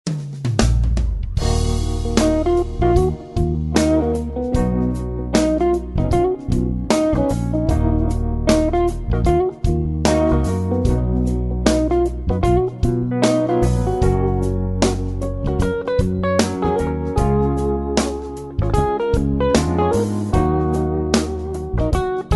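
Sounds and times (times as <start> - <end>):
jazz music: 0.5 - 22.3.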